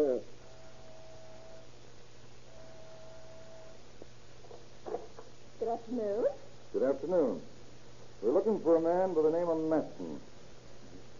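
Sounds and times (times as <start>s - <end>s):
apartment door buzzer droning: 0.0s - 1.8s, 2.5s - 3.9s
low hum and hiss: 0.0s - 11.1s
speech: 5.9s - 7.5s, 8.2s - 10.3s.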